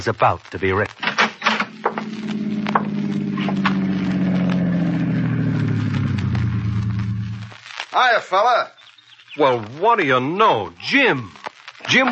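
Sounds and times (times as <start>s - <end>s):
speech: 0.0s - 1.1s, 8.0s - 8.8s, 9.4s - 12.0s
tires rolling over rough gravelly road: 0.0s - 12.0s
car engine rumbling on a narrow dusty roadway: 1.0s - 7.8s.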